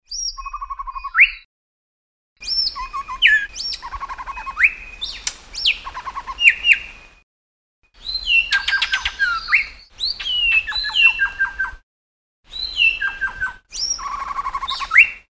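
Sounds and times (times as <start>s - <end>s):
long-tailed shrike calling: 2.4s - 7.2s, 8.0s - 11.8s, 12.5s - 15.2s.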